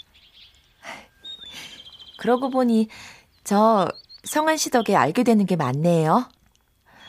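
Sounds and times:
trilling bird call: 0.0s - 5.3s
small birds chirping outdoors in a rooftop garden: 0.0s - 7.0s
speech: 2.2s - 6.4s.

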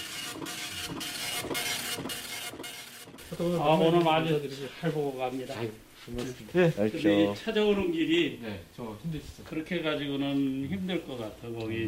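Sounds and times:
dot-matrix impact printer printing on paper in a computer museum: 0.0s - 4.4s
speech: 3.4s - 11.8s.

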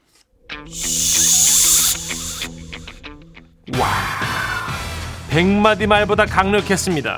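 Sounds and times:
steady low tonal drone: 0.1s - 5.3s
shushing hiss through the lips imitated by a voice: 0.4s - 3.4s
speech: 0.6s - 1.1s, 5.4s - 7.1s.

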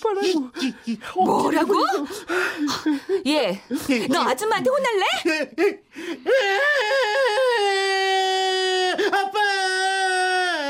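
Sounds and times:
speech: 0.1s - 7.0s
child crying in a domestic scene: 6.2s - 10.6s.

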